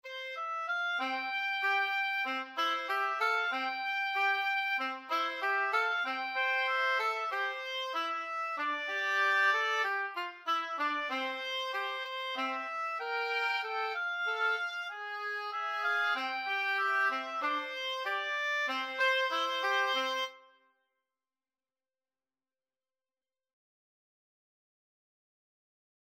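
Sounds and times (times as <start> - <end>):
oboe duet: 0.0 - 20.6.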